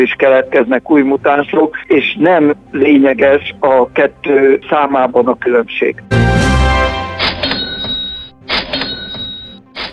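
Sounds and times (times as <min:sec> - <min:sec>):
speech: 0:00.0 - 0:06.9
cash register ringing: 0:07.2 - 0:09.9.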